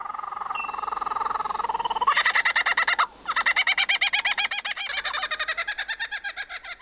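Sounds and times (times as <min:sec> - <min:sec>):
Australian lyrebird mimicking a kookaburra's laughing call: 0:00.0 - 0:05.6.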